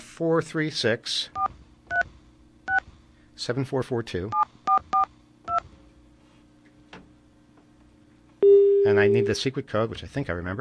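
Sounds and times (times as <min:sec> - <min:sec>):
speech: 0:00.2 - 0:01.6, 0:03.4 - 0:04.5, 0:08.9 - 0:10.5
telephone keypad DTMF beeps as a number is dialed: 0:08.4 - 0:09.4
person reading out digits: 0:08.4 - 0:09.5.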